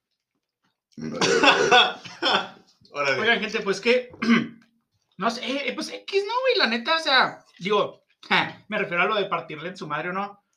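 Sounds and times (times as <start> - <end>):
loud rough raspy burp: 0.9 - 3.2, 4.1 - 4.6
speech: 1.0 - 4.5, 5.2 - 10.4
laughter: 1.2 - 3.4.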